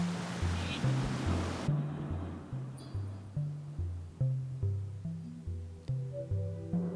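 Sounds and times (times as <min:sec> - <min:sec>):
flowing water: 0:00.0 - 0:02.7
soft slowly repeating low musical pattern: 0:00.2 - 0:06.9.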